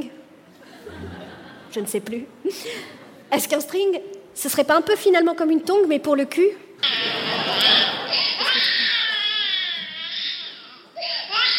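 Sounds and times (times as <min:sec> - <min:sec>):
laughter: 0:00.6 - 0:01.7, 0:06.8 - 0:09.1
speech: 0:01.7 - 0:06.9
baby crying: 0:06.8 - 0:11.5.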